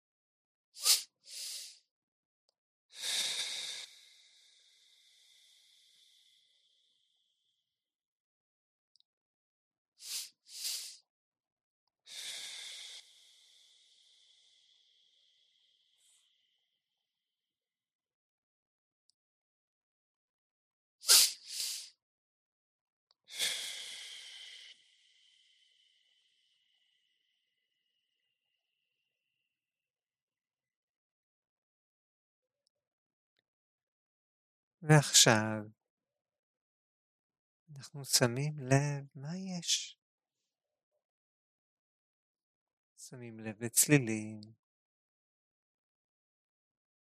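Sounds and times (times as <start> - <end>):
slow deep breaths during a guided breathing exercise: 3.0 - 7.3, 10.0 - 11.0, 12.1 - 16.6, 23.3 - 27.1
speech: 34.8 - 35.8, 37.8 - 40.0, 43.1 - 44.6.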